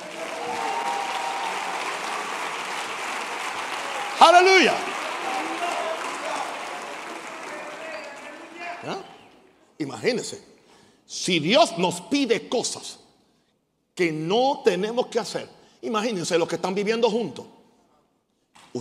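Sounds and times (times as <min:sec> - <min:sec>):
congregation applauding: 0:00.0 - 0:09.4
speech: 0:04.2 - 0:05.0, 0:09.8 - 0:10.5, 0:11.1 - 0:13.0, 0:14.0 - 0:17.6.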